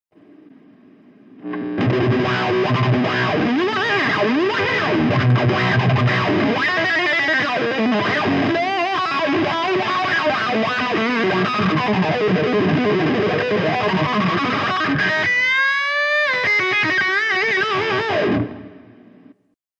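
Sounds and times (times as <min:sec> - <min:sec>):
wah guitar effect: 0:01.4 - 0:19.0.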